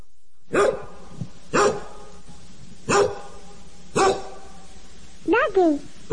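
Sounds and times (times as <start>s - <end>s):
speech: 0.5s - 0.8s
dog barking: 0.5s - 2.1s, 2.9s - 3.4s, 4.0s - 4.6s.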